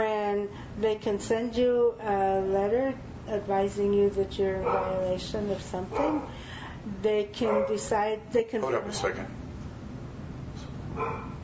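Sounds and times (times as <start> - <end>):
steady low hum: 0.0 - 11.4
speech: 0.8 - 9.4, 11.0 - 11.2
dog barking: 4.6 - 5.0, 5.9 - 6.4, 7.4 - 7.9, 11.0 - 11.4.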